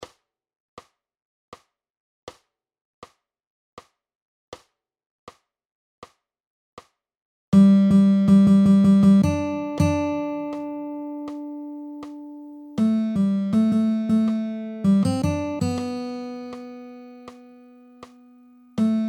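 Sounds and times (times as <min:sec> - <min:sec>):
guitar playing at 80 bpm: 0:07.6 - 0:19.0.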